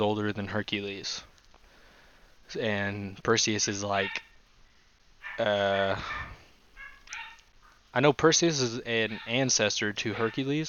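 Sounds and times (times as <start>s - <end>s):
speech: 0.0s - 1.3s, 2.5s - 4.3s, 5.4s - 6.4s, 7.9s - 10.6s
faint dog barks in a back room: 4.0s - 4.4s, 5.2s - 7.8s, 9.0s - 10.6s.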